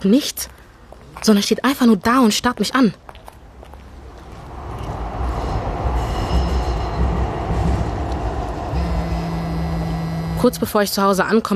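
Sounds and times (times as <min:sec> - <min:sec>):
speech: 0:00.0 - 0:00.6, 0:01.2 - 0:03.0, 0:10.4 - 0:11.5
train rumbling at a station platform: 0:03.4 - 0:11.5
faint metallic squeals and clatter of wheels on rails: 0:04.4 - 0:10.8.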